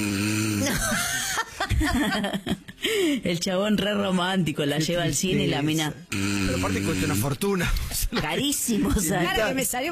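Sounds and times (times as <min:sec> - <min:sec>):
person imitating snoring: 0:00.0 - 0:01.0, 0:06.1 - 0:07.4
person chuckling: 0:00.6 - 0:02.8
speech: 0:01.8 - 0:09.9.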